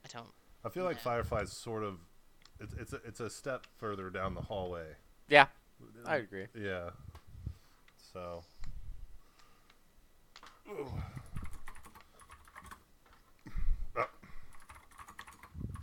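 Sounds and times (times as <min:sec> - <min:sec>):
speech: 0:00.1 - 0:07.1, 0:08.1 - 0:08.5, 0:10.7 - 0:11.2
typing on a computer keyboard: 0:11.2 - 0:12.8, 0:14.5 - 0:15.8.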